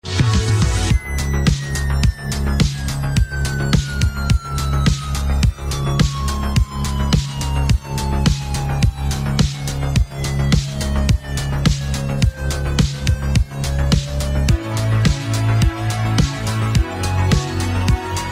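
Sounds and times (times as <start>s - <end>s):
techno ringtone: 0.7s - 18.2s.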